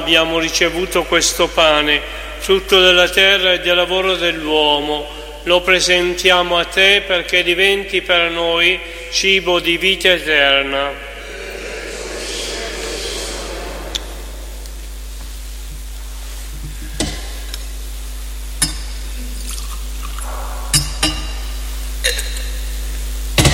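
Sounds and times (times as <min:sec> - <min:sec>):
steady low hum: 0:00.0 - 0:23.0
speech: 0:00.1 - 0:11.1
water being poured into wine: 0:19.4 - 0:20.2.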